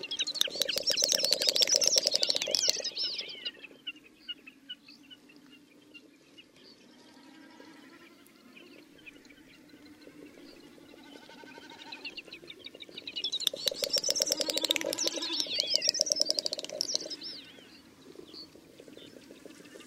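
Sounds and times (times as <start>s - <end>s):
jack snipe display flight call: 0.1s - 3.4s, 13.3s - 17.6s.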